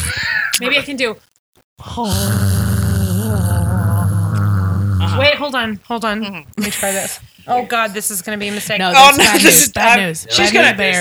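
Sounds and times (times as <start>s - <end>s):
voice imitating a buzzing sound: 0.0s - 0.8s, 1.8s - 7.5s
speech: 0.6s - 2.6s, 3.3s - 3.6s, 5.2s - 10.9s.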